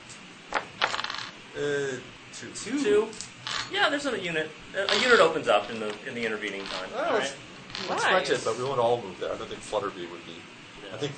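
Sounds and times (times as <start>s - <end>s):
dice rolled onto a hard surface: 0.8s - 1.3s
speech: 1.6s - 11.1s.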